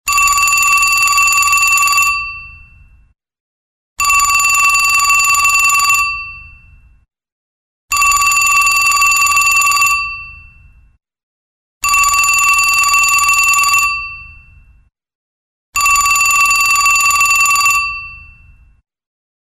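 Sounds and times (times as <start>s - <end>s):
antique phone ringtones: 0.1s - 2.9s, 4.0s - 6.8s, 7.9s - 10.8s, 11.8s - 14.6s, 15.8s - 18.6s.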